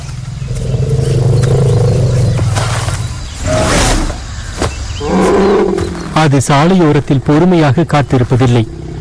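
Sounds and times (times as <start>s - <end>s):
male elephant rumbling: 0.0s - 4.3s, 5.0s - 6.4s
four-ton male elephant roaring on a road: 0.4s - 4.2s, 5.0s - 6.2s
speech: 6.2s - 8.8s.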